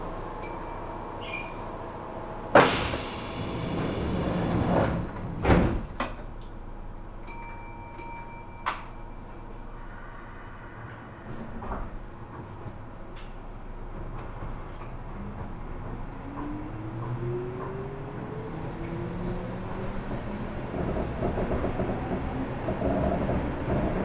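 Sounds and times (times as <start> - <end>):
soft chime at a train station: 0.4 - 1.6, 7.2 - 10.7
train doors sliding shut at an Osaka station on a Japanese rail line: 2.4 - 6.6, 9.7 - 24.0.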